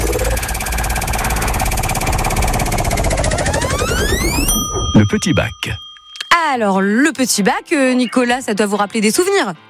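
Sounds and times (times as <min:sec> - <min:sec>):
game show prize wheel spinning with ratcheting clatter: 0:00.2 - 0:04.7
speech: 0:05.1 - 0:09.6.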